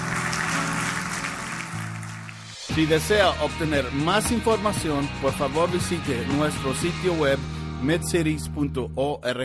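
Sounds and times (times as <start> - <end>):
audience at a church service applauding loudly: 0.0 - 2.7
speech: 2.8 - 9.4.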